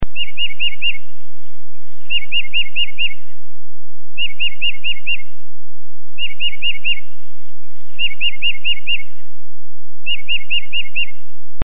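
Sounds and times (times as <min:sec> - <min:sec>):
Tufted titmouse whistled song: 0:00.1 - 0:01.1, 0:02.0 - 0:03.3, 0:04.2 - 0:05.4, 0:06.2 - 0:07.2, 0:07.8 - 0:09.2, 0:10.0 - 0:11.3.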